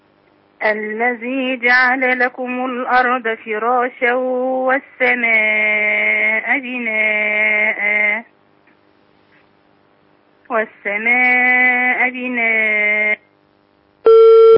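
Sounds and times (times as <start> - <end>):
speech: 0.6 - 8.3, 10.5 - 13.2
electronic beep as a phone call cuts off: 14.1 - 14.5.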